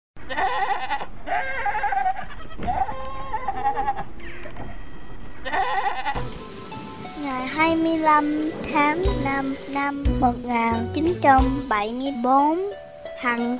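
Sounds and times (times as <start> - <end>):
several goats bleating: 0.2 - 4.1, 5.4 - 6.2
speech: 0.3 - 1.6, 7.2 - 13.5.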